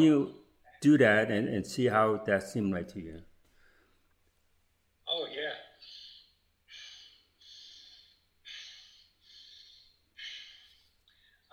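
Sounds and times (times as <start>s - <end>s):
speech: 0.0s - 3.3s
slow rhythmic deep breathing: 3.4s - 4.2s, 5.8s - 11.5s.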